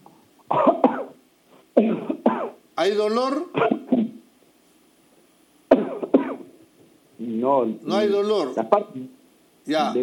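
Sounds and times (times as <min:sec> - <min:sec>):
forceful hacking cough: 0:00.5 - 0:01.2, 0:01.8 - 0:02.6, 0:03.6 - 0:04.2, 0:05.7 - 0:06.5
speech: 0:02.8 - 0:03.6, 0:07.6 - 0:10.0.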